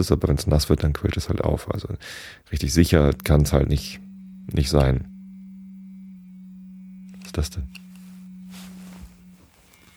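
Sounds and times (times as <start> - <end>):
speech: 0.0 - 5.1, 7.3 - 7.8
smartphone emitting loud steady electronic tone: 2.7 - 9.9.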